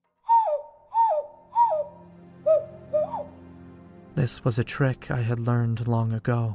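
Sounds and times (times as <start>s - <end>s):
person whistling low notes imitating a bird call: 0.2s - 3.3s
speech: 4.2s - 6.5s.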